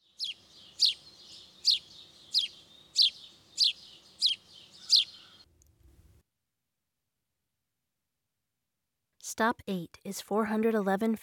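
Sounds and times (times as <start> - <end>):
house sparrow giving sharp chirps: 0.0 - 5.5
speech: 9.4 - 11.2.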